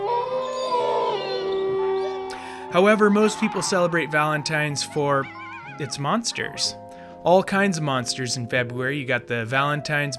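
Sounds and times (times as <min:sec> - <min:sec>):
wolf howling: 0:00.0 - 0:06.8
speech: 0:02.7 - 0:10.1.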